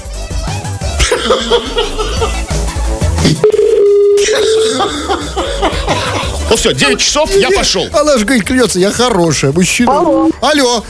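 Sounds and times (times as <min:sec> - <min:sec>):
laughter: 0:00.9 - 0:02.8, 0:04.2 - 0:07.6
speech: 0:01.2 - 0:03.4, 0:04.2 - 0:10.8
telephone tone while a number is dialed: 0:03.3 - 0:05.1.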